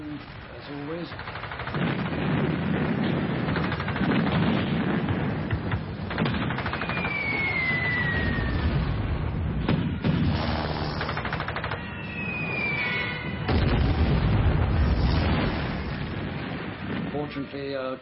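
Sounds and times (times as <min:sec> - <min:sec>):
heavy bomb explosions from Luftwaffe aircraft: 0:00.2 - 0:17.5
continuous rattling gunfire in an air raid on a ship: 0:01.1 - 0:07.2, 0:09.7 - 0:11.8
falling bomb whistles: 0:06.8 - 0:09.1, 0:11.8 - 0:14.0.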